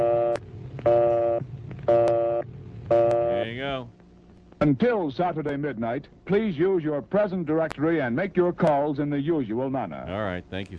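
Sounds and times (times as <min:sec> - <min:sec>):
telephone busy signal: 0:00.0 - 0:03.4
speech: 0:04.6 - 0:10.7.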